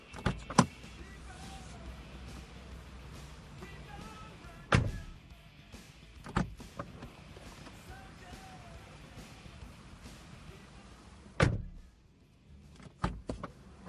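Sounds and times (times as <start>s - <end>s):
car door clunks and thuds: 0.0s - 0.9s, 4.1s - 5.2s, 6.2s - 8.0s, 11.2s - 11.9s, 12.8s - 13.8s
car driving away: 0.0s - 11.9s
low idling car engine hum: 0.0s - 13.8s.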